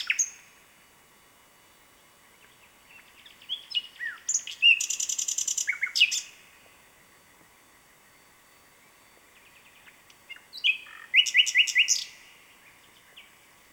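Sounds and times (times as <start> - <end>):
common nightingale Luscinia megarhynchos singing: 0.0 - 0.6, 2.3 - 6.6, 8.8 - 13.4.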